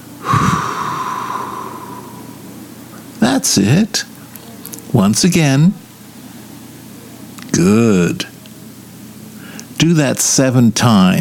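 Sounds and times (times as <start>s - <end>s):
sharp breath drawn in through the nose: 0.2s - 2.5s
long soft airy exhale through the mouth: 0.2s - 2.6s
speech: 3.4s - 4.2s, 4.9s - 5.8s, 7.6s - 8.3s, 9.8s - 11.2s.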